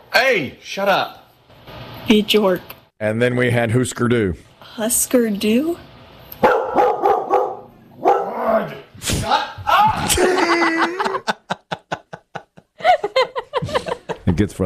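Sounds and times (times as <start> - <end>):
speech: 0.3 - 1.2, 2.1 - 5.9, 14.4 - 14.6
dog barking: 6.4 - 8.5
laughter: 9.8 - 14.3.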